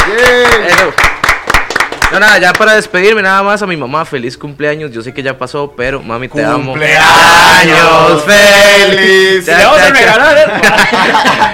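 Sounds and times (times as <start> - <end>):
person calling for a round of applause: 0.0 - 2.7
small group hand claps: 0.0 - 2.7
speech: 0.1 - 1.1, 2.1 - 11.5
laughter: 8.8 - 11.5.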